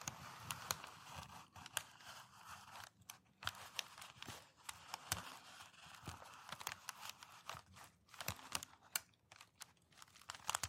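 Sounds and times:
packing paper slowly crinkled and pressed: 0:00.0 - 0:10.6.

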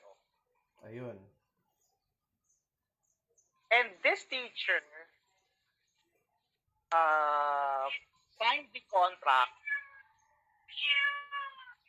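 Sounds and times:
speech: 0:00.9 - 0:01.4, 0:03.7 - 0:05.2, 0:06.9 - 0:09.6, 0:10.7 - 0:11.2
cat meowing: 0:09.5 - 0:11.8.

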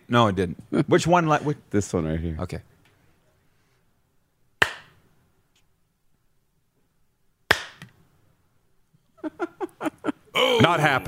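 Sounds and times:
speech: 0:00.1 - 0:02.7, 0:10.7 - 0:11.0
hand claps to switch on a light: 0:07.5 - 0:07.9
laughter: 0:09.2 - 0:11.0.

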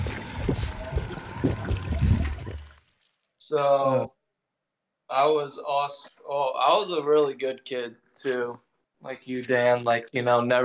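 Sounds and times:
barrel liquid chugging and glugging: 0:00.0 - 0:02.9
speech: 0:03.5 - 0:04.2, 0:05.1 - 0:10.6.

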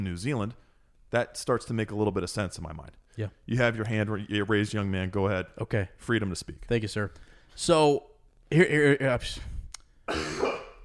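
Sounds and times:
speech: 0:00.0 - 0:09.5, 0:10.1 - 0:10.5
loud human cough: 0:10.1 - 0:10.8
throat clearing: 0:10.1 - 0:10.8.

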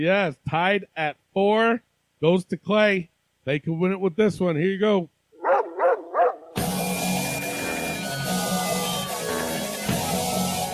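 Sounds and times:
speech: 0:00.0 - 0:05.1
dog barking: 0:05.4 - 0:06.6
loud full-band music: 0:06.6 - 0:10.7.

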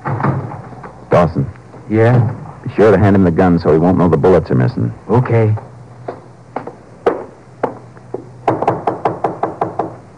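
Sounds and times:
speech: 0:01.2 - 0:05.7
man knocking on a door: 0:05.6 - 0:10.0.

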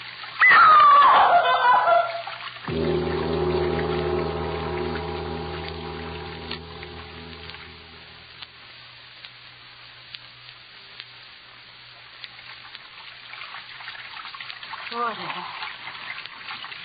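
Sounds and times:
running water: 0:00.0 - 0:08.5, 0:12.4 - 0:16.8
low droning hum: 0:02.7 - 0:08.8.

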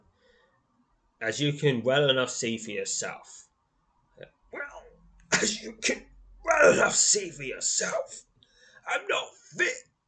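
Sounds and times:
speech: 0:01.2 - 0:03.4, 0:05.4 - 0:09.9
man coughing violently in a breathless coughing fit: 0:05.4 - 0:06.0.

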